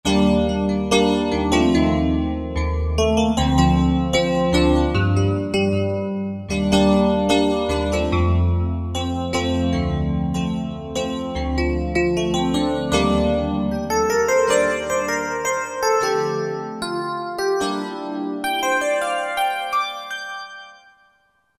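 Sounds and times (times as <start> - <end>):
Rhodes piano on Roland SR-JV80-03: 0.1 - 20.7.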